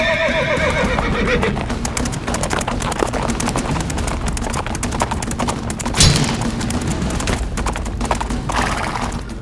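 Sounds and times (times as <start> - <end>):
horse whinnying: 0.0 - 4.1, 8.4 - 9.4
galloping hooves of charging mounted knights: 0.0 - 9.4.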